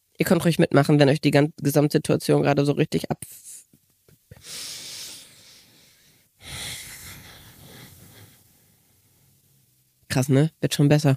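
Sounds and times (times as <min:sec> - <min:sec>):
speech: 0:00.2 - 0:03.5, 0:10.1 - 0:11.1
deep breathing in and out as a calming breathing exercise: 0:04.3 - 0:09.5.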